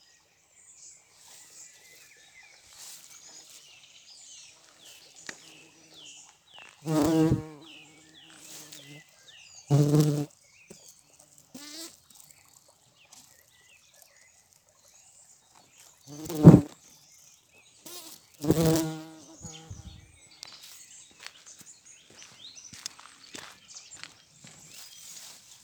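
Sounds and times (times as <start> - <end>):
bumblebee buzzing in flight: 6.8 - 9.0, 9.7 - 10.3, 11.3 - 12.6, 16.1 - 16.7, 17.9 - 20.1.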